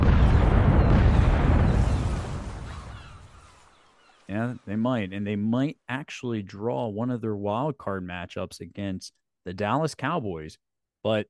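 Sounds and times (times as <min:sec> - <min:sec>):
heavy booming cannon blast with deep low rumble: 0:00.0 - 0:03.3
speech: 0:04.3 - 0:11.2.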